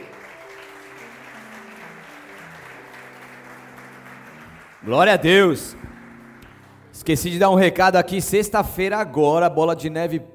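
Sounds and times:
large crowd applauding: 0.0s - 7.6s
sustained keyboard chords: 0.0s - 10.3s
speech: 4.8s - 5.9s, 7.0s - 10.3s.

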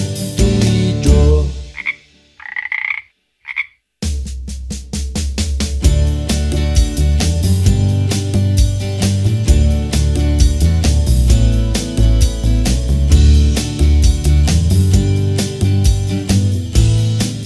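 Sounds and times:
loud bouncy music with a steady beat: 0.0s - 1.9s, 4.0s - 17.4s
frog croaking: 1.7s - 3.8s.

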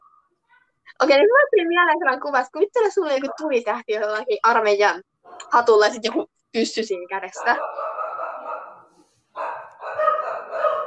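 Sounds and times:
speech: 1.0s - 7.8s
dogs barking: 3.1s - 3.6s, 7.4s - 10.8s.

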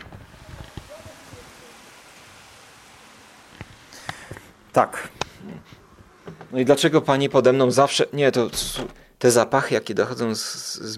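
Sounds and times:
sharp ticks of ice striking: 0.0s - 5.4s
sleet and hail falling outside an open window: 0.0s - 6.5s
speech: 4.8s - 5.2s, 6.5s - 10.9s.

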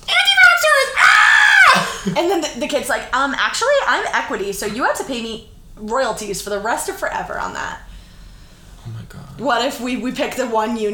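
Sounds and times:
loud high-pitched excited scream: 0.1s - 2.0s
speech: 2.0s - 7.9s, 9.4s - 10.9s.

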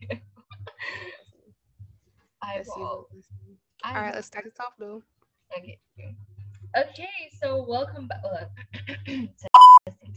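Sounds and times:
speech: 2.5s - 9.5s
loud steady beep tone: 9.5s - 9.8s.

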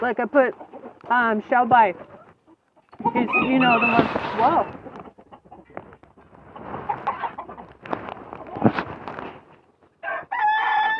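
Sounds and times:
speech: 0.0s - 2.1s, 3.0s - 4.8s
birds clucking agitatedly: 0.0s - 8.7s
birds scuffling: 0.0s - 10.9s
rooster crowing: 10.0s - 10.9s.

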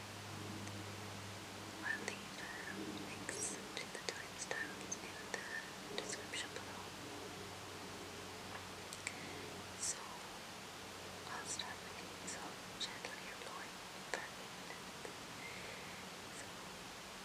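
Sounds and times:
steady hiss of mic wind: 0.0s - 17.2s
soft unintelligible whispers: 1.8s - 7.0s, 9.0s - 10.3s, 11.2s - 16.5s.

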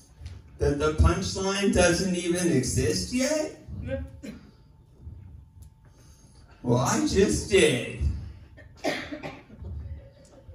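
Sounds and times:
low murmur of noise: 0.0s - 10.5s
speech: 0.6s - 4.4s, 6.6s - 8.1s
raspy coughs: 4.2s - 4.7s, 8.5s - 9.9s.

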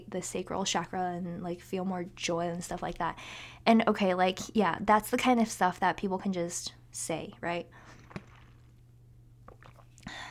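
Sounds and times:
low steady electrical hum: 0.0s - 10.2s
speech: 0.1s - 8.0s
quiet sipping and swallowing of water: 7.7s - 10.2s.

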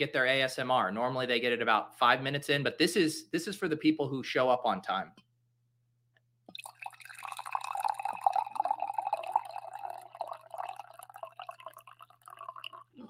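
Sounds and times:
speech: 0.0s - 5.2s
coffee pouring into a cup: 6.5s - 13.0s.

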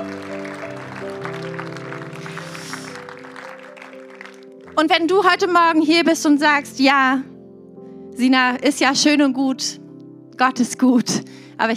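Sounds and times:
audience applause: 0.0s - 4.8s
speech: 4.8s - 7.3s, 8.2s - 9.8s, 10.4s - 11.7s.

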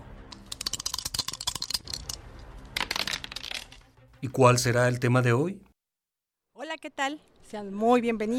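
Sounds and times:
dice clattering across a hard surface: 0.3s - 2.2s, 2.8s - 3.9s
speech: 4.2s - 5.7s, 6.8s - 8.3s.

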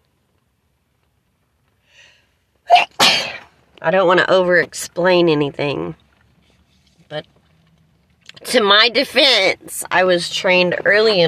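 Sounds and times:
sneeze: 2.7s - 3.5s
speech: 3.8s - 6.0s, 7.1s - 7.4s, 8.4s - 11.2s.

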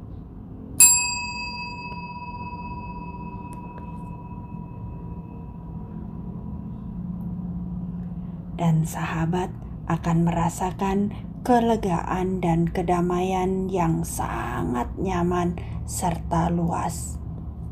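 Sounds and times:
steady low hum: 0.0s - 17.7s
bright chime ding: 0.8s - 5.5s
speech: 8.6s - 17.2s.

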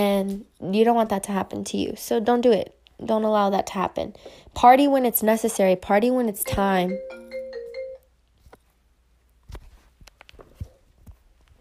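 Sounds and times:
speech: 0.0s - 7.2s
phone ringtone from an incoming call: 6.4s - 8.1s
shuffling: 9.4s - 11.5s.

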